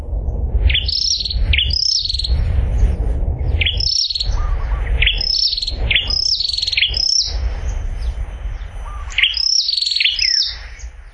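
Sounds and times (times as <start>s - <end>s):
low rumbling background: 0.0s - 11.1s
prinia song: 0.2s - 11.1s.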